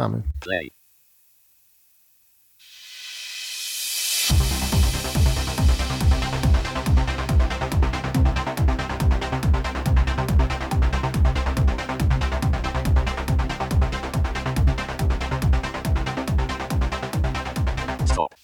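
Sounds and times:
speech: 0:00.0 - 0:00.8
faint residual hiss from gentle noise reduction: 0:00.0 - 0:04.3
rhythmic music recording with a regular beat: 0:04.1 - 0:18.3.

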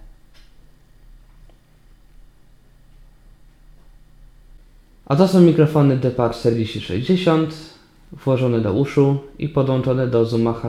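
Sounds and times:
computer fan hum and hiss: 0:00.0 - 0:10.6
speech: 0:05.1 - 0:10.6.

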